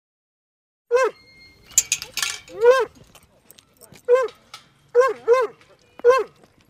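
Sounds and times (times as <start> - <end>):
dog barking in short high whiny yelps at a dog park: 0.9 - 1.2, 2.5 - 3.0, 4.1 - 6.6
brief metallic jingle and clatter: 1.2 - 4.9.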